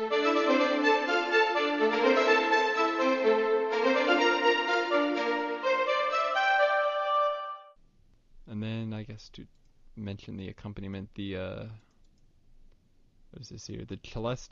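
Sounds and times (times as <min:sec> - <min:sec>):
both violin sections playing staccato: 0:00.0 - 0:07.2
oboe melody: 0:00.0 - 0:07.8
speech: 0:10.0 - 0:11.9, 0:13.3 - 0:14.4.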